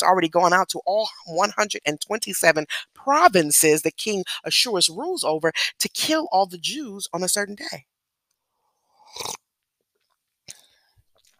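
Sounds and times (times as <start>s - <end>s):
speech: 0.0s - 7.9s, 9.1s - 9.4s
slurping sip of tea: 9.0s - 9.4s.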